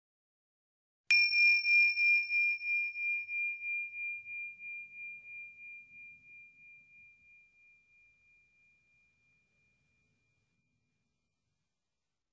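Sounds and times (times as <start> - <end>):
small bell struck to open a meditation exercise: 1.1 - 10.8.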